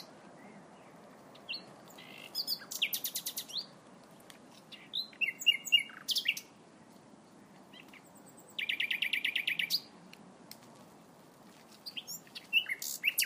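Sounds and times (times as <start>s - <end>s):
common nightingale singing varied phrases: 0.0s - 3.8s, 4.6s - 6.6s, 7.7s - 9.9s, 11.8s - 13.2s.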